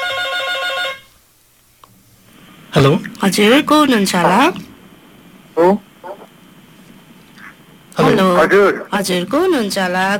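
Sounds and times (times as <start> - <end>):
telephone ringing with electronic trilling: 0.0 - 1.1
faint hiss: 1.0 - 9.0
speech: 2.8 - 4.7, 5.6 - 5.9, 8.3 - 10.1.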